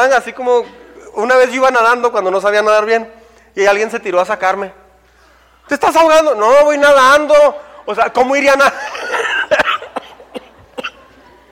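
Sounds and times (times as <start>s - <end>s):
speech: 0.1s - 4.8s, 5.7s - 9.0s
laughter: 8.7s - 11.5s
person coughing harshly: 8.8s - 11.2s.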